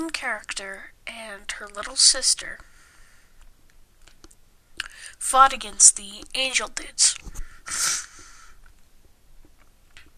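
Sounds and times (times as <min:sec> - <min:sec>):
speech: 0:00.0 - 0:02.7, 0:05.2 - 0:08.0
faint snuffles: 0:07.7 - 0:08.4
person with a cold sneezing: 0:07.7 - 0:08.4.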